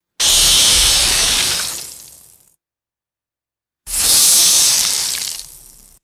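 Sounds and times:
sharp hissing bursts of acidic liquid mud spray: 0.2s - 2.4s, 3.9s - 6.0s.

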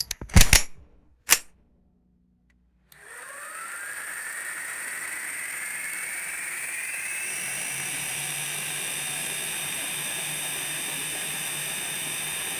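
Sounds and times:
mechanical snap: 0.0s - 1.5s
fluttering motorized whir of air: 3.0s - 12.5s.

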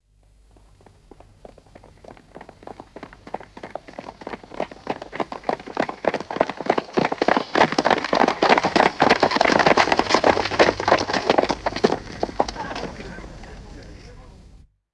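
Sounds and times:
multiple people running and stopping on dirt: 0.5s - 14.6s
laughter: 11.6s - 14.6s.

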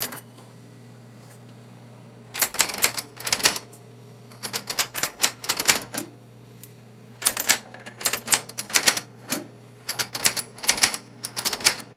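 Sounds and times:
clunky cash register key presses: 0.0s - 0.3s, 2.3s - 3.7s, 4.3s - 11.9s.

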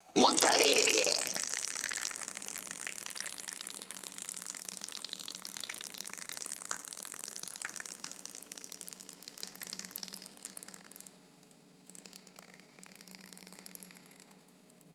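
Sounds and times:
gloppy liquid pouring: 0.2s - 10.9s.

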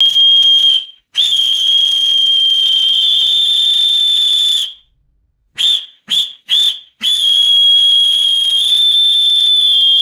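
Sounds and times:
short and long pealess whistle blasts: 0.0s - 4.9s, 5.6s - 10.0s.

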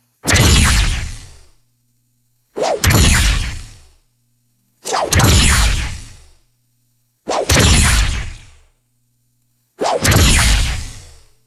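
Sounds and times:
short sci-fi energy weapon laser blasts: 0.2s - 1.3s, 2.6s - 3.9s, 4.8s - 6.2s, 7.3s - 8.5s, 9.8s - 11.2s.

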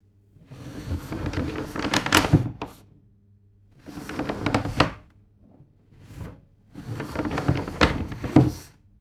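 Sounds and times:
wooden drawer sliding slowly with bumps: 0.5s - 2.8s, 3.8s - 5.1s, 5.9s - 8.8s.

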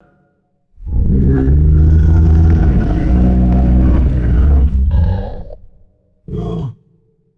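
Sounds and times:
deep tubular rattling creature growl: 0.8s - 6.6s.

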